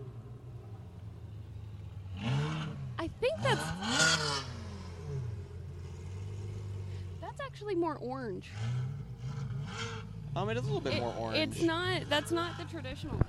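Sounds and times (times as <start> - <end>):
sports car engines revving and accelerating past: 0.0 - 13.2
speech: 3.1 - 4.4, 7.5 - 9.2, 10.4 - 13.2.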